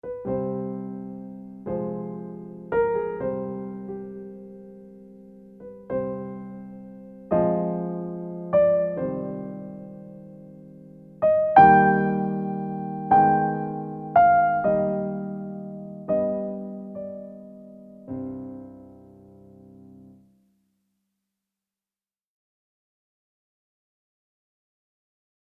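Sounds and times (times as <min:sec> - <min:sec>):
brief sad piano piece: 0:00.0 - 0:20.3.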